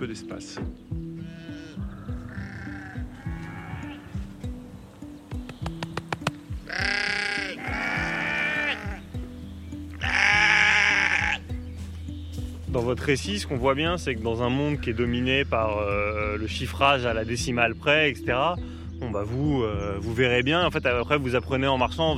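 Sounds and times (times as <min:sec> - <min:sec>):
speech: 0:00.0 - 0:01.4, 0:12.7 - 0:22.1
flock of sheep bleating on a small farm: 0:01.2 - 0:04.3, 0:06.6 - 0:09.1, 0:09.9 - 0:11.5.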